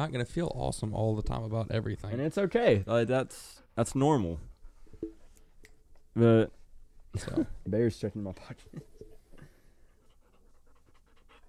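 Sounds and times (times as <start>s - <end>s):
speech: 0.0s - 5.2s, 6.2s - 8.9s
dog panting: 2.9s - 5.3s, 9.7s - 11.4s.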